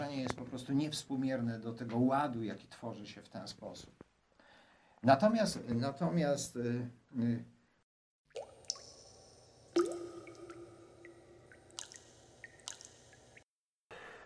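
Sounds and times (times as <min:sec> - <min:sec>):
speech: 0:00.2 - 0:04.0, 0:05.0 - 0:07.5
wet swallowing: 0:08.3 - 0:13.4
person sipping water: 0:08.4 - 0:13.4.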